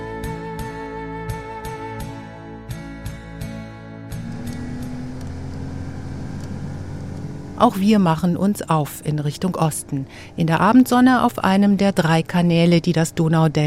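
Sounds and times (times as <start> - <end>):
regular ticking clatter: 4.2 - 7.6
speedboat engine on a canal through the Danube Delta: 4.2 - 13.6
speech: 7.6 - 13.6.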